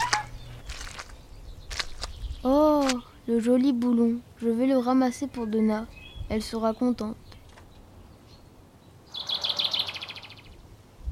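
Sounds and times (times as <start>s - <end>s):
bird chirping in a rapid trill: 0.0s - 3.4s, 5.3s - 10.7s
speech: 3.3s - 7.2s.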